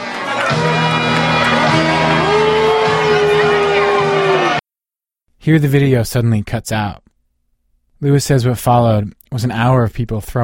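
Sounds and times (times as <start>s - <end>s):
large crowd booing: 0.0s - 4.6s
scattered shouts: 0.0s - 4.6s
speech: 5.5s - 7.1s, 8.0s - 10.4s.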